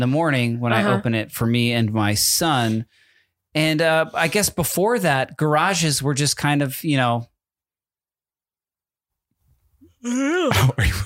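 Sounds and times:
speech: 0.0s - 3.0s, 3.6s - 7.3s, 10.0s - 11.0s
person yawning: 10.0s - 10.8s.

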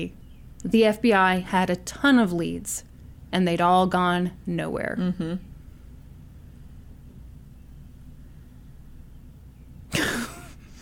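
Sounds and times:
speech: 0.0s - 5.5s
stifled sneeze held back in the throat: 9.9s - 10.5s.

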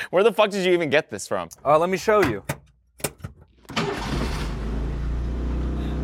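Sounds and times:
speech: 0.1s - 2.6s
right-hand-drive car's diesel engine starting and idling: 3.6s - 6.0s.

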